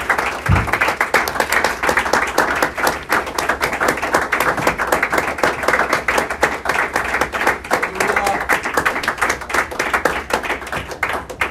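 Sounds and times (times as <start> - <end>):
large church audience applauding: 0.0 - 11.5.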